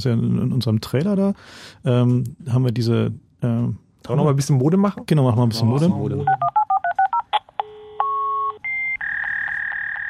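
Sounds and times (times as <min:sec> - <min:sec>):
speech: 0:00.0 - 0:06.6
modem dialing a telephone number with touch-tone beeps: 0:06.3 - 0:10.0.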